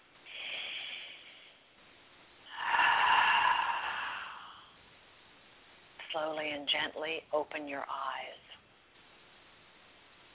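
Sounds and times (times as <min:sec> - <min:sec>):
slow deep breath: 0:00.2 - 0:01.8, 0:02.4 - 0:04.8
speech: 0:06.2 - 0:08.4.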